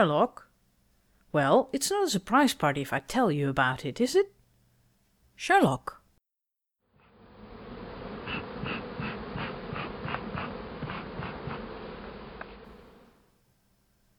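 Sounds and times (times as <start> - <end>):
speech: 0.0 - 0.5, 1.3 - 4.4, 5.4 - 6.0
swarm of bees buzzing around a hive: 7.2 - 13.2.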